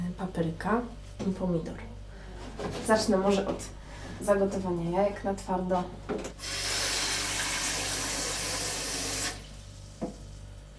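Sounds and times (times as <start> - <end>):
speech: 0.2 - 1.9, 2.6 - 6.6
water running from a tap into a small pot: 6.4 - 10.4.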